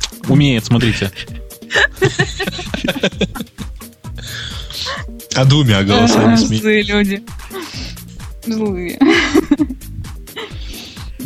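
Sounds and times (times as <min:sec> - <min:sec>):
speech: 0:00.3 - 0:03.6, 0:04.3 - 0:07.4, 0:08.5 - 0:09.7
person laughing in rhythmic bursts: 0:01.7 - 0:03.8, 0:05.9 - 0:06.5, 0:09.0 - 0:11.2
breathy hissing exhale: 0:04.1 - 0:05.2, 0:07.4 - 0:08.2, 0:10.3 - 0:11.2.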